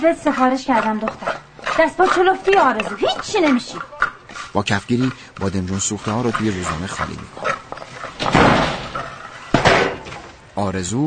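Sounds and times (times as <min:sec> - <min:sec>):
speech: 0:00.0 - 0:07.5, 0:10.6 - 0:11.0
door slamming shut hard: 0:08.2 - 0:10.2.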